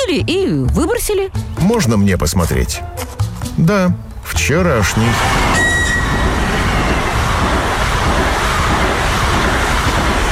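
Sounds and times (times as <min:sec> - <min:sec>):
speech: 0:00.1 - 0:05.5
brief high-pitched squeal of electric commuter train: 0:04.8 - 0:10.3
electric commuter train roaring past: 0:04.8 - 0:10.3.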